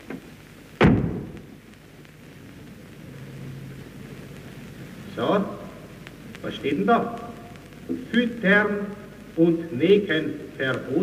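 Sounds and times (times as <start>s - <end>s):
hiss: 0.0s - 11.0s
lion cage door at a zoo slamming shut: 0.8s - 1.2s
speech: 5.2s - 5.6s, 6.4s - 7.2s, 7.9s - 11.0s.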